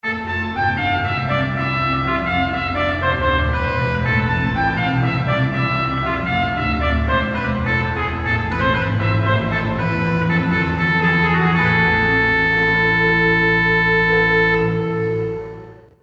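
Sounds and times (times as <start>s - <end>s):
trumpet: 0.0s - 16.0s.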